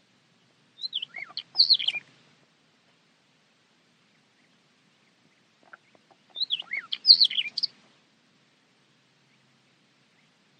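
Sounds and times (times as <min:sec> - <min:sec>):
bird calls: 0:00.4 - 0:02.2, 0:04.0 - 0:07.8, 0:10.1 - 0:10.5.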